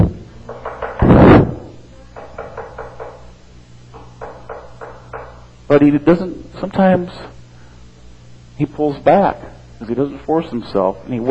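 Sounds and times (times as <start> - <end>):
knocking on a door: 2.2 - 3.2, 4.2 - 5.4
speech: 5.7 - 7.3, 8.6 - 11.2.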